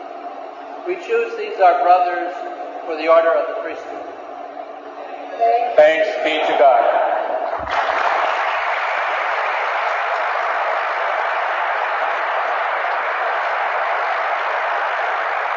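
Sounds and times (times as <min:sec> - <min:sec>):
speech: 0:00.8 - 0:04.2, 0:05.4 - 0:07.0
large crowd applauding at a priesthood ordination: 0:07.5 - 0:15.5.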